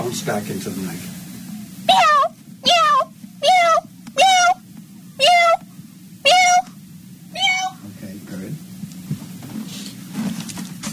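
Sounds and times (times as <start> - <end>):
speech: 0.1 - 1.2, 1.9 - 2.2
person imitating cat meows: 1.9 - 4.6, 5.2 - 5.6, 6.3 - 6.7, 7.4 - 7.8.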